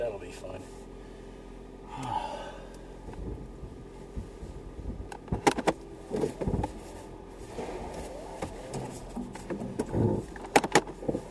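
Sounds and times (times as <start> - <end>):
car engine rumble while backing out through a tight spot in snow: 0.0 - 11.2
sharp breathy gasp: 1.8 - 2.8
speech: 2.0 - 2.3
knocks and clunks: 5.1 - 6.8, 7.6 - 11.2.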